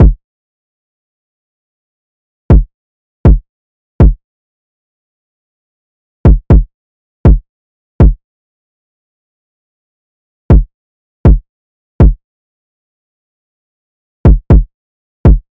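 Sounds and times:
kick drum: 0.0 - 0.2, 2.5 - 3.4, 4.0 - 4.2, 6.3 - 7.4, 8.0 - 8.2, 10.5 - 11.4, 12.0 - 12.2, 14.2 - 15.5
slow crunchy drum loop with kick: 6.3 - 6.6, 14.3 - 14.6.

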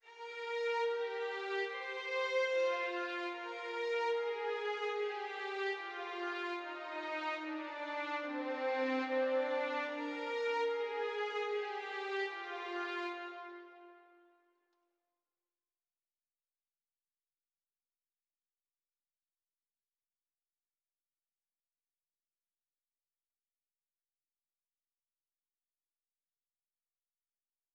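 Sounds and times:
string melody loop in C minor: 0.0 - 14.0.

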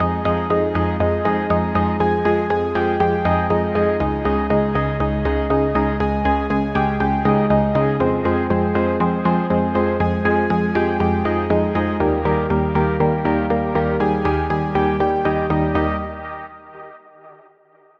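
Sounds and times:
FM synth house music loop at 120 BPM: 0.0 - 16.8.

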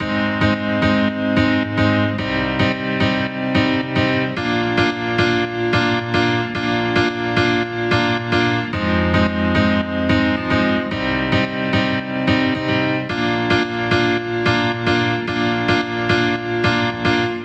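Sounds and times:
house music piano in G sharp: 0.0 - 17.4.

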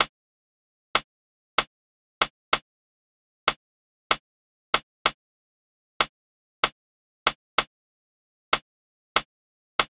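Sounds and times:
Afrobeats drum loop with rim hits: 0.9 - 2.7, 3.4 - 5.3, 6.0 - 7.8, 8.5 - 9.8.

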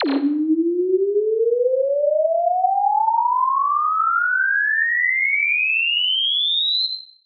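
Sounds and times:
sine wave riser effect: 0.0 - 7.0.

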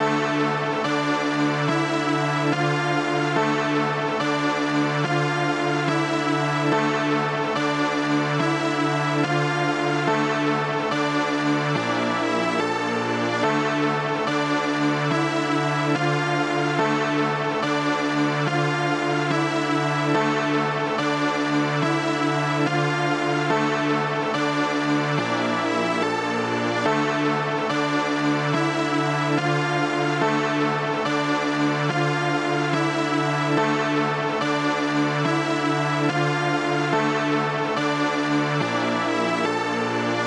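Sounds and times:
143 BPM D minor strings melody loop: 0.0 - 40.2.

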